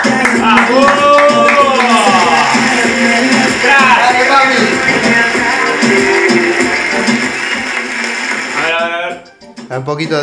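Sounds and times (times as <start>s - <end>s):
loud applause welcoming a guest: 0.0s - 8.8s
tonal cheers or music: 0.0s - 9.2s
speech: 9.8s - 10.2s.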